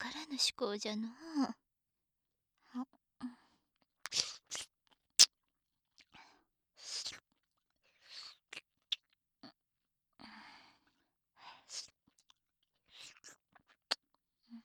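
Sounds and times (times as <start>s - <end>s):
speech: 0.4s - 1.6s, 2.8s - 3.4s
wet mouth sounds eating hard candy: 4.1s - 4.7s.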